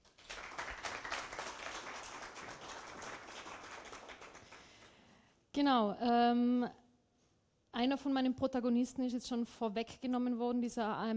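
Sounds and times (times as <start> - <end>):
audience at a talk applauding: 0.0 - 4.9
speech: 5.6 - 6.8, 7.8 - 11.1.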